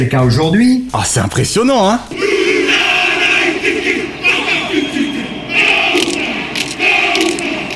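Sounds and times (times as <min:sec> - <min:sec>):
speech: 0:00.0 - 0:02.4
dense crowd roar: 0:02.2 - 0:07.7
rugby team of men chanting a haka war cry in unison: 0:02.2 - 0:07.7.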